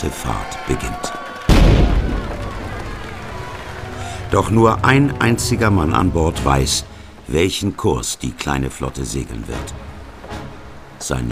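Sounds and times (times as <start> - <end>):
speech: 0.0 - 1.2, 4.3 - 9.9, 11.0 - 11.2
cannon salvo fired from guns aboard a sailing ship: 1.5 - 3.1.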